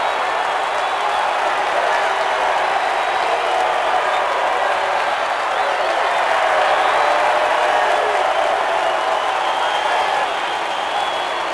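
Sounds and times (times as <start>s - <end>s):
crowd cheering: 0.0s - 11.5s.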